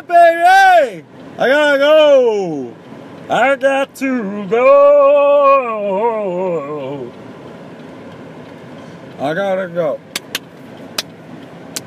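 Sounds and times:
line of cars in traffic approaching: 0.0 - 11.8
speech: 0.1 - 7.2, 9.2 - 10.1
sharp clicks: 10.1 - 11.8.

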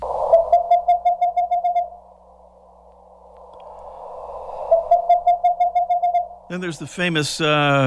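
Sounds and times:
western screech owl ping-pong call: 0.0 - 2.2, 3.5 - 6.6
soft hiss: 1.8 - 5.0, 6.2 - 7.8
speech: 6.5 - 7.8.

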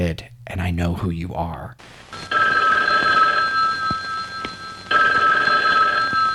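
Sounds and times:
speech: 0.0 - 2.3
telephone ringing with a bright electronic trill: 2.3 - 6.3.

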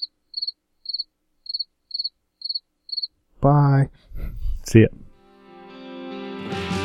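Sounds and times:
cricket chirping: 0.0 - 3.2
speech: 3.4 - 4.0, 4.7 - 5.1.

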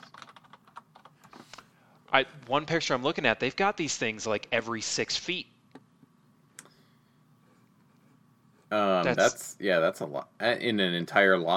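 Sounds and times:
typing on a computer keyboard: 0.0 - 1.2
speech: 2.1 - 5.5, 9.1 - 11.5.

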